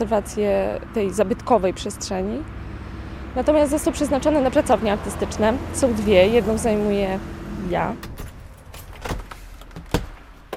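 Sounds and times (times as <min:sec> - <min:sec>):
speech: 0:00.0 - 0:02.6, 0:03.4 - 0:08.1
bunch of twelve keys jangling at the door of an artists' studio: 0:08.2 - 0:09.6.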